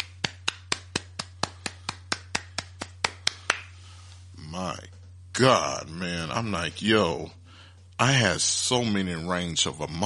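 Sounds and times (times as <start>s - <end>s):
single pair of hands clapping: 0.0s - 3.8s
faint steady low hum: 0.0s - 10.0s
speech: 5.4s - 7.4s, 8.0s - 10.0s.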